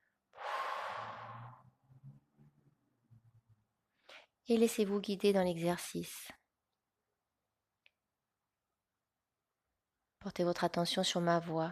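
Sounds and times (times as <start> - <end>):
deep breath blown out hard through the mouth: 0.4 - 1.7
speech: 4.5 - 6.4, 10.3 - 11.7.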